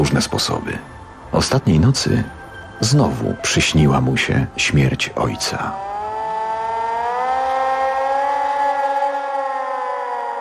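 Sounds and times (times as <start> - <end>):
speech: 0.0 - 5.9
hand-cranked siren wailing across open fields: 5.2 - 10.3.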